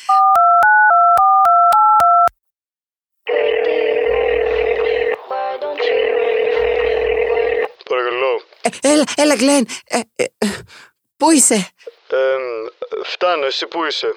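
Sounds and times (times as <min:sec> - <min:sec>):
loud steady telephone tone: 0:00.1 - 0:02.3, 0:03.3 - 0:05.2, 0:05.8 - 0:07.7
phone keypad beeps while placing a call: 0:00.1 - 0:02.3
speech: 0:08.7 - 0:14.1.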